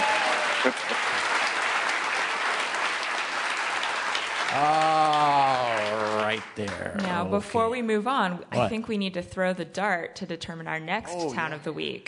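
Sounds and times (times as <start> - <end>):
audience applause: 0.0 - 7.6
speech: 0.6 - 1.1, 4.6 - 4.8, 6.4 - 12.0.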